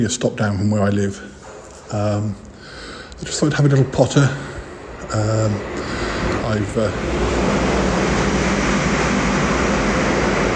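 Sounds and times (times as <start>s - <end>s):
speech: 0.0s - 2.4s, 3.2s - 4.5s, 5.1s - 7.4s
loud rumbling noise in a railway station waiting room: 2.9s - 10.5s.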